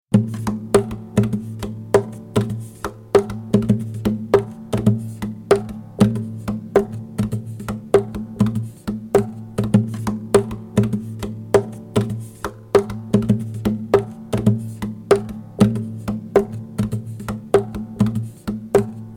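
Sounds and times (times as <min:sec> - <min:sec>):
guitar percussion loop: 0:00.1 - 0:19.1.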